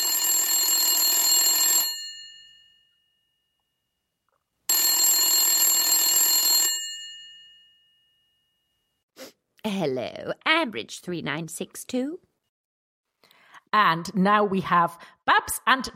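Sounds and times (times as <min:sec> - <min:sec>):
old-style telephone bell ringing: 0:00.0 - 0:03.6, 0:04.7 - 0:08.8
speech: 0:09.7 - 0:12.3, 0:13.7 - 0:15.9.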